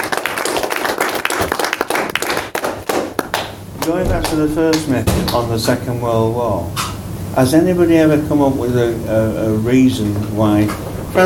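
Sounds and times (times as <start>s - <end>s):
crowd applauding: 0.0s - 5.0s
speech: 3.9s - 11.2s.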